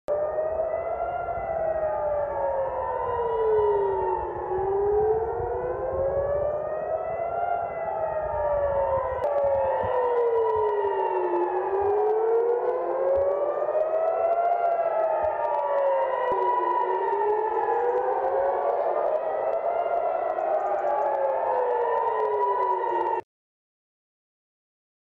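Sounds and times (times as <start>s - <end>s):
war alarm siren in Tehran: 0.1s - 23.3s.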